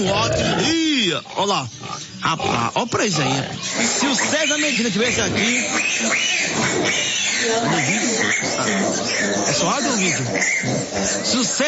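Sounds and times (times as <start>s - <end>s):
pigs and piglets grunting and squealing while being fed: 0.0s - 11.6s
speech: 0.0s - 11.6s.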